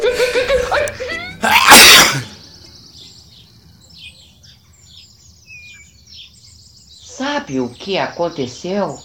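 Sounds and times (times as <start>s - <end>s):
breathy gasps: 0.1s - 0.9s
loud sneeze: 1.4s - 2.3s
speech: 7.5s - 9.0s.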